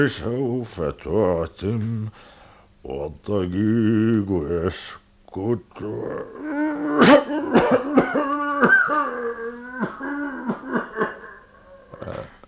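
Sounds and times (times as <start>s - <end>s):
speech: 0.0s - 10.5s
man having a coughing fit: 6.5s - 12.4s.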